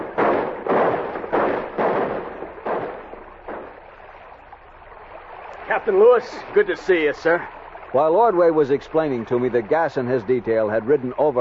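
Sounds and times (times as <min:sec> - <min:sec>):
celebratory volley of gunshots fired by men in canoes pulling in to shore: 0:00.0 - 0:04.0
speech: 0:05.7 - 0:11.3.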